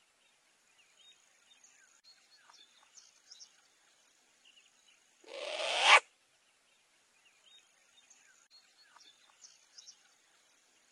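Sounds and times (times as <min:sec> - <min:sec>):
short-eared owl rasping call: 0:05.2 - 0:06.0.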